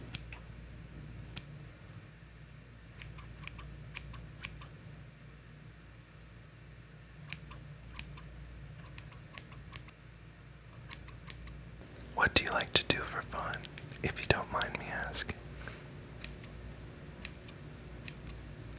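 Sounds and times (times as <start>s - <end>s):
low steady hum: 0.0s - 18.7s
scissors snipping hair: 3.0s - 4.7s, 7.2s - 9.9s, 10.8s - 11.6s
speech: 12.3s - 15.4s.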